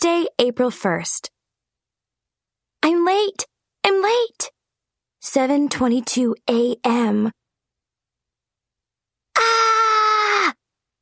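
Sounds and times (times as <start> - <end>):
speech: 0.0 - 1.4, 2.8 - 4.6, 5.2 - 7.4
person screaming in frustration: 9.4 - 10.6.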